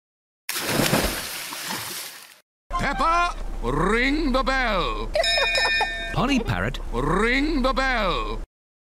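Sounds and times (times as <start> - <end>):
object dropped from a boat splashing into water: 0.5 - 2.4
speech: 2.9 - 8.4.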